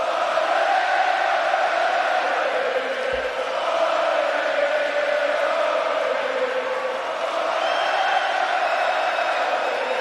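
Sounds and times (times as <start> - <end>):
hockey arena crowd cheering: 0.0 - 9.9
hockey crowd shouts and whoops: 6.7 - 9.9.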